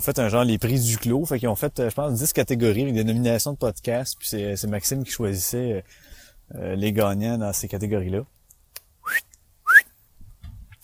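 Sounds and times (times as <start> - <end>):
speech: 0.0 - 8.4, 9.1 - 9.3
rising whistles calling back a dog: 9.0 - 10.0
low rustle and thump: 10.2 - 10.8.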